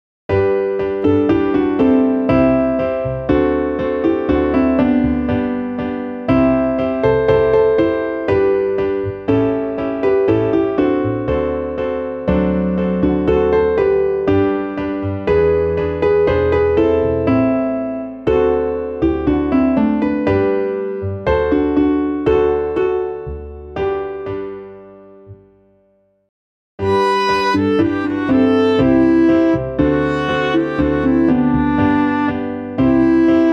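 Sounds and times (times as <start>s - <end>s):
MIDI piano: 0.3s - 33.5s.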